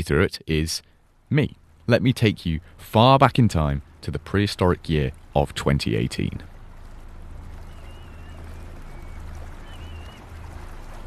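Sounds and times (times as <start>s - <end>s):
speech: 0.0s - 6.5s
water washing against small fishing boat: 1.4s - 11.0s
small fishing boat engine drone: 1.5s - 11.0s
faint high calls: 3.6s - 11.0s.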